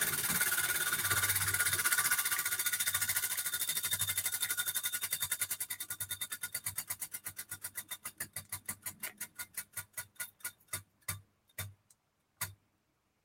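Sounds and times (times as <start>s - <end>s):
prize wheel spinning with pointer clicking against pegs: 0.0s - 10.6s.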